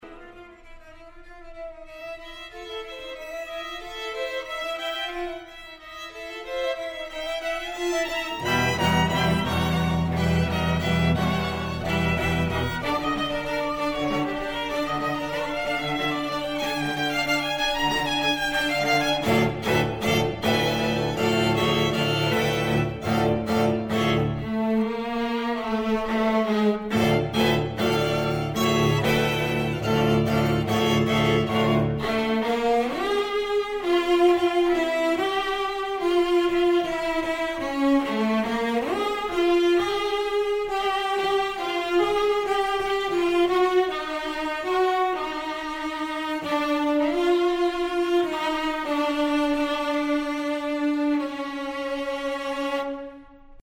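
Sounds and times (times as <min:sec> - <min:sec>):
string quartet playing a nigun: 0:00.0 - 0:53.6.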